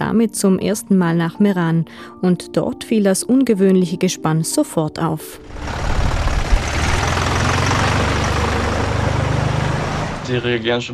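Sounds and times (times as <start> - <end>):
speech: 0.1 - 5.9, 10.3 - 10.9
heavy diesel tractor engine idling: 5.4 - 10.8.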